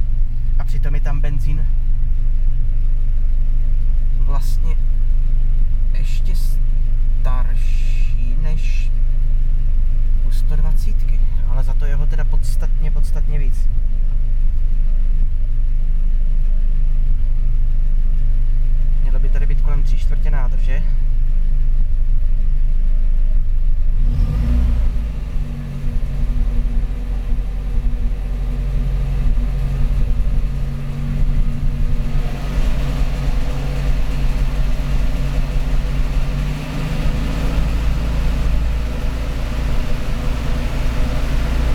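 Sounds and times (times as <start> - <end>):
low rumble: 0.0 - 41.7
speech: 0.7 - 1.9, 4.3 - 9.6, 10.2 - 15.3, 19.2 - 21.0
car engine revving through the gears while driving: 23.3 - 41.7.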